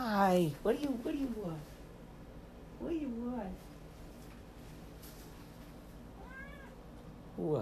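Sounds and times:
low hum: 0.0s - 7.5s
speech: 0.2s - 1.7s, 2.8s - 3.7s, 7.4s - 7.5s
cat meowing: 6.2s - 6.8s.

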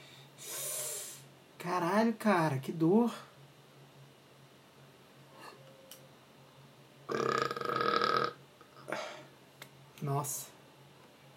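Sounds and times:
speech: 1.6s - 3.3s, 10.2s - 10.5s
long loud throaty burp: 7.1s - 9.0s.

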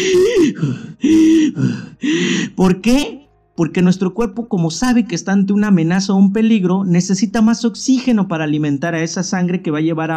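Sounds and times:
speech: 0.0s - 1.8s, 2.6s - 10.1s
person breathing rapidly and heavily with gasping inhales: 0.0s - 2.6s.

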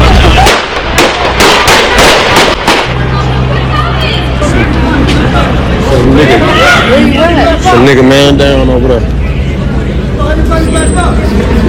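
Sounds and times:
loud gunshots: 0.0s - 3.0s
noisy crowd chatter: 0.0s - 11.6s
steady low engine-like hum: 2.6s - 11.6s.

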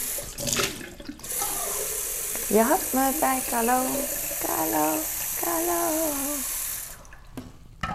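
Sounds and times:
tap water filling a water bottle: 0.0s - 7.9s
speech: 2.5s - 6.5s
person singing a short tune: 4.4s - 6.5s.

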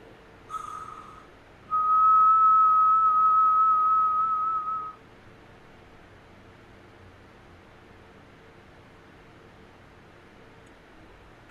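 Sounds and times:
sustained whistled tone: 0.5s - 5.0s.

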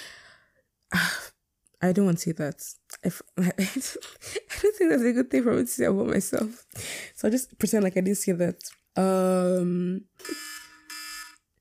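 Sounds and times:
speech: 1.8s - 10.4s
electronic alarm with low buzzing tone and bright beeps: 10.2s - 11.5s.

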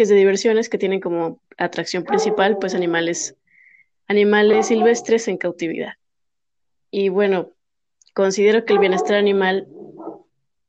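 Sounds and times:
speech: 0.0s - 3.4s, 4.1s - 6.0s, 6.9s - 7.6s, 8.2s - 9.9s
rescued dog barking: 2.0s - 2.9s, 4.4s - 5.1s, 8.6s - 10.3s.

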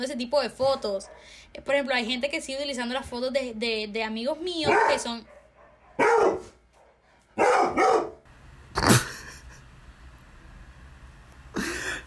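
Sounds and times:
speech: 0.0s - 5.4s
dog barking loudly: 0.9s - 1.4s, 4.6s - 8.3s.

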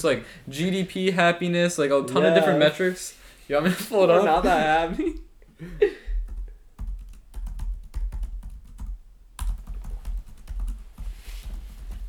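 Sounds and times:
speech: 0.0s - 6.0s
laughter: 2.1s - 3.0s, 3.6s - 6.1s
typing on a computer keyboard: 6.2s - 12.0s.

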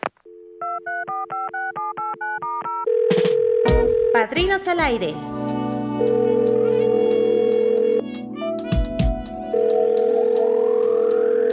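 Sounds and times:
telephone line dial tone: 0.2s - 4.2s, 6.0s - 8.1s, 9.5s - 11.5s
speech: 4.4s - 6.8s.

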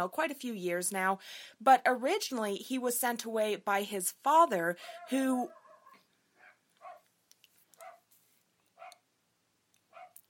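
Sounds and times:
speech: 0.0s - 5.6s
dogs barking in short high yaps: 4.9s - 7.0s, 7.8s - 8.0s, 8.8s - 9.0s, 9.9s - 10.2s.

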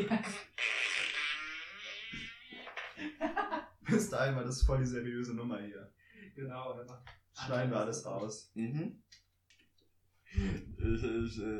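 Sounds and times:
raspy fart sound effect from an app: 0.1s - 3.1s
speech: 3.9s - 9.2s, 10.3s - 11.5s.

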